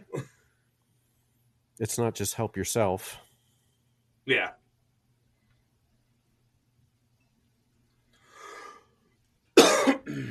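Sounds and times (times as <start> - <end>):
speech: 1.8 - 3.3
soft breathy exhale: 8.2 - 8.9
loud cough: 9.6 - 10.2.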